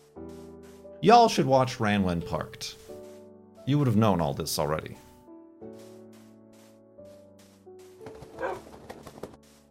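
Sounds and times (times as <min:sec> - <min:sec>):
speech: 0:01.0 - 0:02.8, 0:03.7 - 0:05.0
dog barking: 0:08.4 - 0:08.7.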